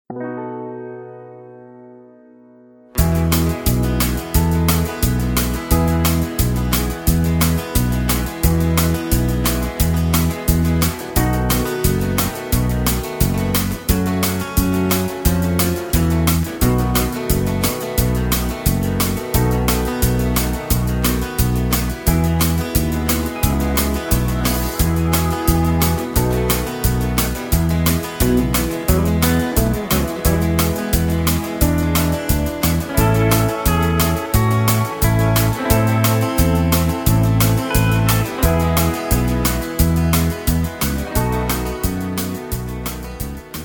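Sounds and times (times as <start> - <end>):
backing track in E to F without backing vocals: 0.1 - 43.6.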